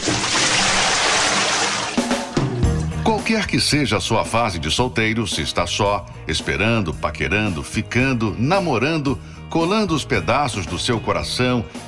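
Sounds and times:
cold water poured onto a person's head: 0.0 - 2.4
speech: 3.3 - 11.8.

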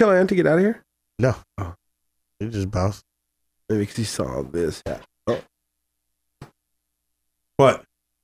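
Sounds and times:
speech: 0.0 - 1.8, 2.4 - 3.1, 3.7 - 5.5, 7.6 - 7.9
person burping: 5.2 - 5.5.

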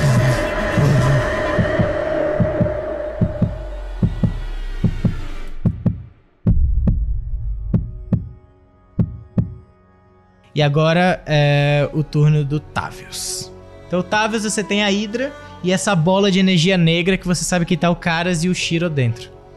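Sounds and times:
heartbeat sound effect thumping: 0.0 - 8.4, 9.0 - 9.6
speech: 10.6 - 19.4.

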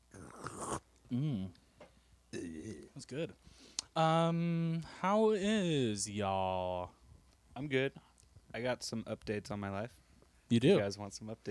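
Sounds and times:
person slurping a drink: 0.1 - 0.8
satisfied vocal sound: 0.1 - 1.6, 2.3 - 3.0
speech: 1.1 - 1.6, 3.0 - 7.0, 7.6 - 11.4.

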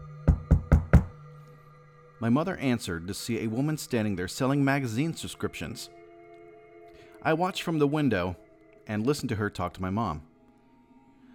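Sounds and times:
firm knocks on a door: 0.3 - 1.1
speech: 2.2 - 6.0, 7.2 - 10.3.

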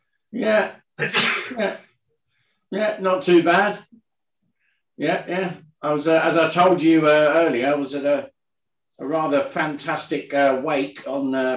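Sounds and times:
speech: 0.3 - 1.9, 2.7 - 4.0, 5.0 - 8.3, 9.0 - 11.5
sneeze: 1.0 - 1.8.

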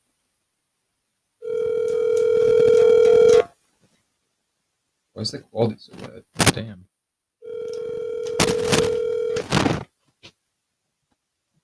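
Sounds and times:
phone ringback tone on an outgoing call: 1.4 - 3.5, 7.4 - 9.4
speech: 5.2 - 6.9.

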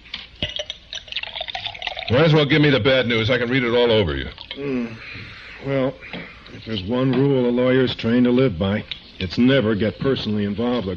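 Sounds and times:
faint glass clink: 0.4 - 2.8
whiskey being poured into a glass: 0.4 - 4.7
speech: 2.1 - 10.9.

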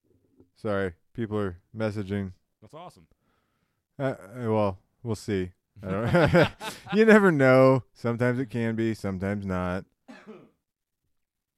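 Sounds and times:
speech: 0.6 - 3.2, 4.0 - 9.9
laughter: 5.8 - 7.3
person coughing: 10.1 - 10.6.

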